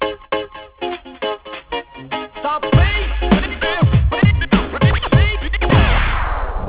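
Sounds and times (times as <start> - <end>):
sub bass: 2.8 - 6.6.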